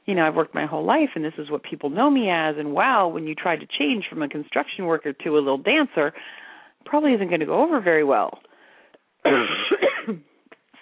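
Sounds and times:
speech: 0:00.1 - 0:08.5, 0:09.2 - 0:10.3
harsh raspy cough: 0:09.2 - 0:10.2.

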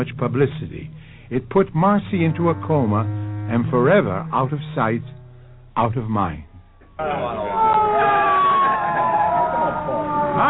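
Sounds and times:
speech: 0:00.0 - 0:05.2, 0:05.8 - 0:07.5
ambulance siren wailing: 0:07.2 - 0:10.4.

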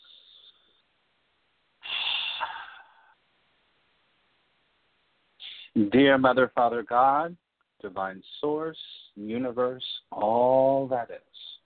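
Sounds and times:
deep breath: 0:01.8 - 0:03.2
speech: 0:05.8 - 0:11.5.

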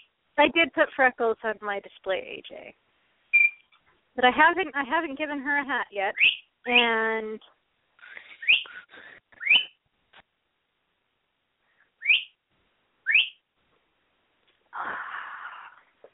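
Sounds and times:
speech: 0:00.4 - 0:02.8, 0:04.2 - 0:07.5
pet bird screaming: 0:06.2 - 0:06.4, 0:12.0 - 0:12.3, 0:13.1 - 0:13.4.

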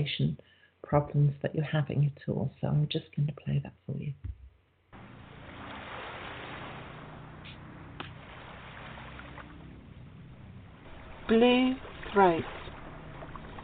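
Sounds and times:
speech: 0:00.0 - 0:04.4, 0:11.3 - 0:12.6
ocean waves breaking on the shore: 0:05.0 - 0:13.6.

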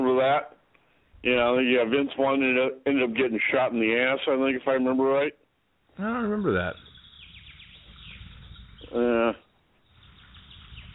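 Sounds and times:
speech: 0:00.2 - 0:00.6, 0:01.2 - 0:05.4, 0:06.0 - 0:06.8, 0:08.9 - 0:09.4
played recording of a harsh bird call squawk: 0:06.5 - 0:10.9.

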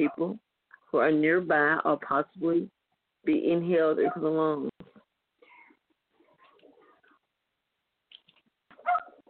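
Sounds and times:
speech: 0:00.0 - 0:04.9
pet dog barking outside a window: 0:04.0 - 0:04.3, 0:08.8 - 0:09.2.

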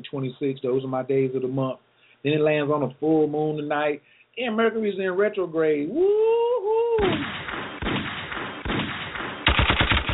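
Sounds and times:
speech: 0:00.0 - 0:07.5
automatic gunfire burst: 0:07.0 - 0:10.1
gunshots: 0:07.0 - 0:10.1.

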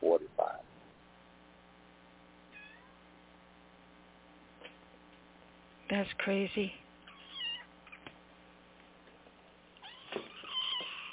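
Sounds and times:
faint hum: 0:00.0 - 0:11.1
cat meowing: 0:02.5 - 0:02.9, 0:07.1 - 0:07.7, 0:09.8 - 0:11.1
speech: 0:05.9 - 0:06.8.

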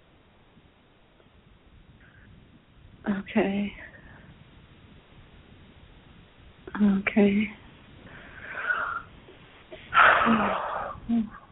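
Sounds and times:
speech: 0:03.0 - 0:03.9, 0:06.8 - 0:07.6
deep breath: 0:08.0 - 0:11.1.

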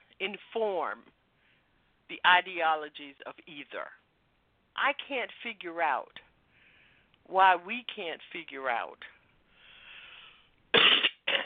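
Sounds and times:
speech: 0:00.2 - 0:01.2, 0:02.1 - 0:04.0, 0:04.8 - 0:06.2, 0:07.2 - 0:09.2
faint breathy hiss: 0:01.2 - 0:02.1, 0:06.3 - 0:07.3, 0:09.1 - 0:11.3
person coughing: 0:10.8 - 0:11.4.

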